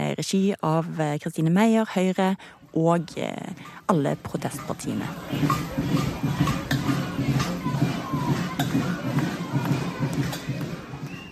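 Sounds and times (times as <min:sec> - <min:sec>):
speech: 0:00.2 - 0:06.4
cowbells: 0:03.5 - 0:11.2
noisy outdoor protest crowd roar: 0:04.6 - 0:11.2
protest whistles: 0:10.9 - 0:11.2.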